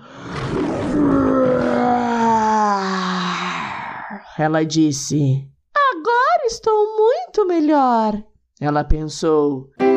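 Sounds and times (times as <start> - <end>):
lion roaring: 0.0 - 4.3
speech: 4.4 - 5.5, 6.5 - 9.8.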